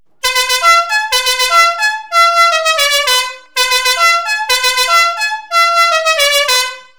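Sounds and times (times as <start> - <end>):
FIAMM M4 pneumatic novelty musical car horn playing a tune: 0.2 - 6.9.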